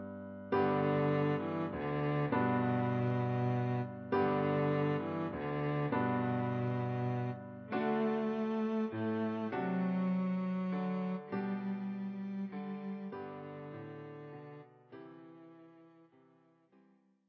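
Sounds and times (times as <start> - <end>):
cello playing a Christmas carol: 0.5 - 16.1.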